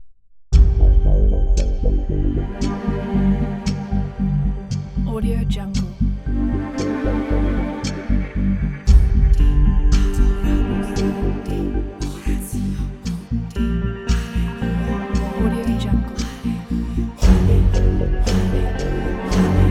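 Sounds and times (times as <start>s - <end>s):
cinematic suspenseful countdown: 0.6s - 19.7s.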